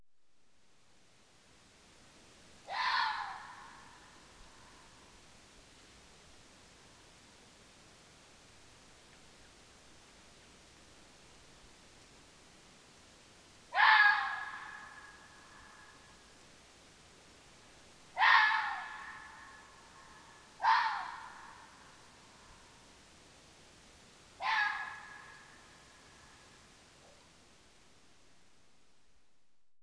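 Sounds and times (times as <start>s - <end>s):
red fox calling: 2.6s - 4.8s, 13.7s - 16.2s, 18.2s - 22.1s, 24.4s - 26.4s.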